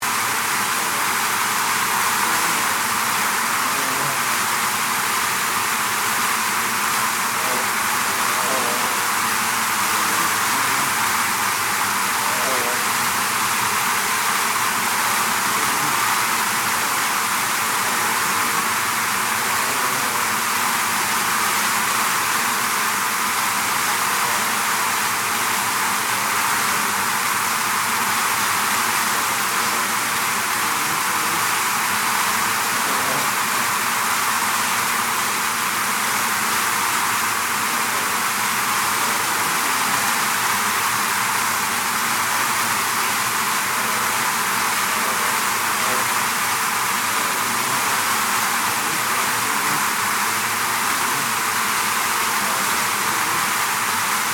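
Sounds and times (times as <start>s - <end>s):
angry bees buzzing in a hive: 0.0s - 54.3s.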